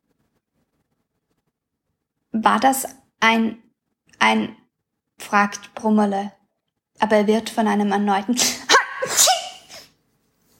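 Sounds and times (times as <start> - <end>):
speech: 2.4 - 3.6, 4.2 - 4.6, 5.2 - 6.4, 7.0 - 9.4
high-pitched sneeze: 8.4 - 10.0.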